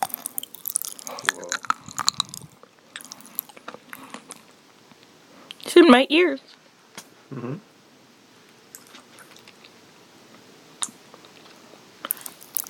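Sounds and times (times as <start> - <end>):
person gulping food: 0.0 - 3.6, 7.3 - 7.6
person chewing food: 0.0 - 4.5, 8.7 - 9.8, 10.8 - 12.6
speech: 5.8 - 6.5, 7.4 - 7.7.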